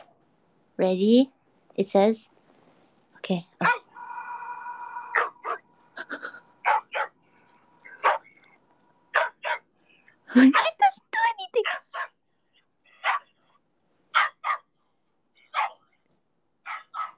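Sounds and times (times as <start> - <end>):
speech: 0.8 - 2.3, 3.2 - 3.8, 10.4 - 10.8
dogs barking from a played video through a speaker: 5.0 - 5.6, 6.6 - 7.2, 7.8 - 8.4, 9.1 - 9.7, 10.4 - 10.9, 11.6 - 12.2, 12.9 - 13.4, 14.1 - 14.8, 15.4 - 15.9, 16.6 - 17.1.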